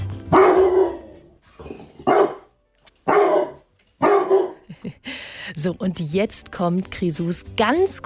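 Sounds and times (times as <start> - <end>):
dog barking with deep drawn-out barks: 0.3 - 1.2, 2.0 - 4.6
speech: 5.6 - 8.0.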